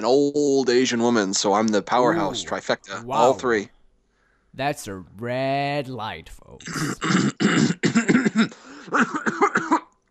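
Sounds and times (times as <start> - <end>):
speech: 0.0 - 3.8, 4.5 - 7.7, 8.4 - 9.2
person coughing in a rough hacking fit: 6.6 - 9.8.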